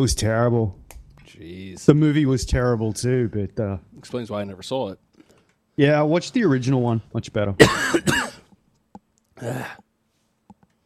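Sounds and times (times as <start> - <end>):
speech: 0.0 - 5.0, 5.8 - 8.1, 9.4 - 9.8
raspy breathy coughs: 7.6 - 8.5, 9.4 - 9.8
throat clearing: 9.4 - 9.9.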